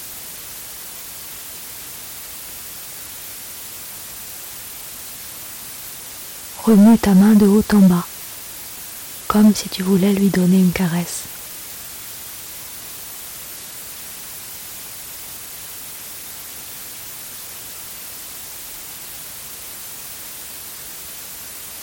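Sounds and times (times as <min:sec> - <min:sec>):
white noise hiss: 0:00.0 - 0:21.8
speech: 0:06.6 - 0:08.1, 0:09.3 - 0:11.3.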